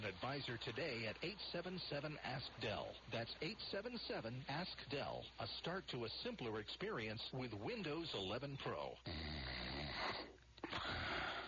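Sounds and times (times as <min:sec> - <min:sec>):
speech: 0:00.0 - 0:11.1
man snoring loudly while asleep: 0:09.0 - 0:11.4.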